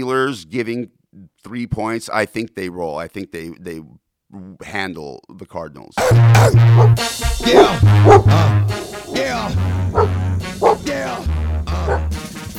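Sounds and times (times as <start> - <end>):
speech: 0.0 - 11.3, 11.9 - 12.2
thumping bass line: 6.0 - 12.2
voices imitating dogs barking: 6.0 - 12.2
music: 6.0 - 12.5.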